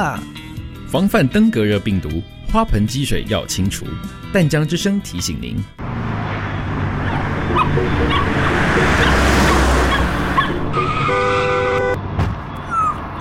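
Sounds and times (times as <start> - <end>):
speech: 0.0 - 6.0, 7.6 - 9.4
loud traffic noise: 5.8 - 13.2
rumbling vehicle passing: 5.8 - 13.2
car horn blaring: 6.5 - 12.0
small dog yelping and whimpering in distress: 7.0 - 8.2, 12.6 - 13.2.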